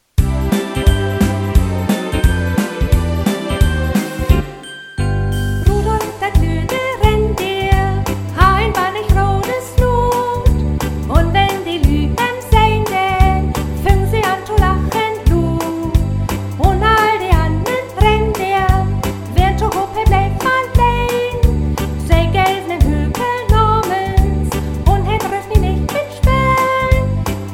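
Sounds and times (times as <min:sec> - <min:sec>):
instruments playing: 0:00.2 - 0:05.9
person singing: 0:05.7 - 0:10.5, 0:11.1 - 0:16.0, 0:16.6 - 0:21.5, 0:22.1 - 0:27.5.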